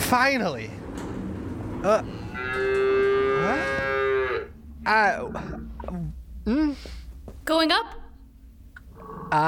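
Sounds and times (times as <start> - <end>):
speech: 0.1 - 0.8, 1.8 - 2.2, 4.9 - 8.0
cow mooing: 2.0 - 4.6.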